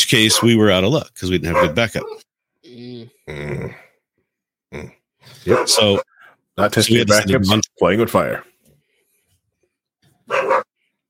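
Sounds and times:
speech: 0.1 - 3.8, 4.7 - 8.5
dog barking: 0.2 - 0.6, 1.5 - 2.2, 5.4 - 6.2, 10.3 - 10.8.

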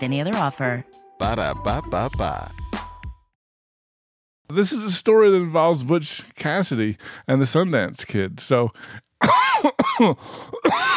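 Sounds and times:
speech: 0.0 - 2.6, 4.5 - 10.9
person coughing and clearing their throat: 9.2 - 10.9.

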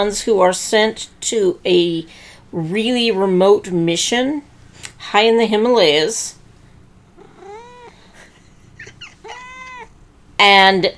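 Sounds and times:
speech: 0.0 - 6.4, 10.4 - 10.9
cat meowing: 7.2 - 8.1, 8.8 - 10.0.

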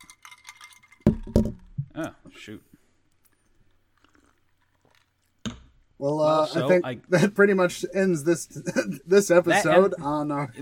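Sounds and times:
glasses clinking: 0.0 - 1.6
speech: 2.0 - 2.7, 6.0 - 10.6
laughter: 8.5 - 9.9.

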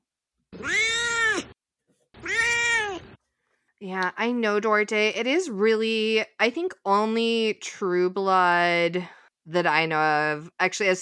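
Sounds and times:
cat meowing: 0.6 - 1.6, 2.2 - 3.2
speech: 3.8 - 11.0.

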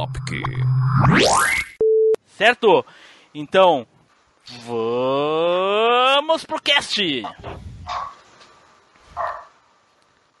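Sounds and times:
speech: 0.0 - 1.6, 2.4 - 3.9, 4.5 - 8.1
dog barking: 7.8 - 8.2, 9.2 - 9.6.

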